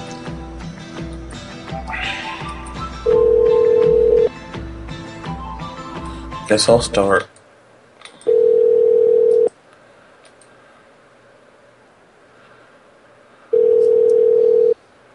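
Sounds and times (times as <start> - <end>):
telephone beeps on a call to a hotel line: 3.1 - 4.3, 8.3 - 9.5, 13.6 - 14.8
speech: 6.5 - 7.3.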